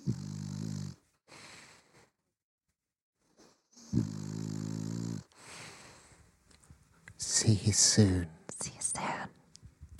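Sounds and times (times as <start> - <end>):
loud rumbling snoring: 0.0 - 1.0, 3.8 - 5.3
speech: 7.4 - 8.7.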